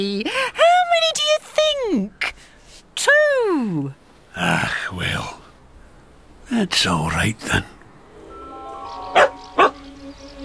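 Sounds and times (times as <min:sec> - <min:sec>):
speech: 0:00.0 - 0:00.4, 0:06.5 - 0:07.7
faint steady hum: 0:00.0 - 0:10.4
dog barking: 0:09.1 - 0:09.9.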